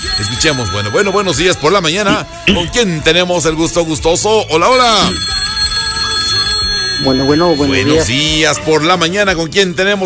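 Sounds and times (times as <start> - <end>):
telephone bell ringing for an incoming call to a radio call-in line: 0.0 - 2.3, 4.6 - 8.5
speech: 0.2 - 5.6, 7.0 - 10.0.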